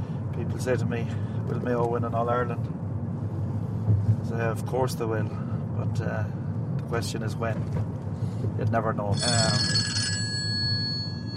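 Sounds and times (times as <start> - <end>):
steady low rumble: 0.0 - 9.6
speech: 0.4 - 2.8, 4.0 - 9.9
telephone ringing in a short electronic burst: 9.2 - 11.3.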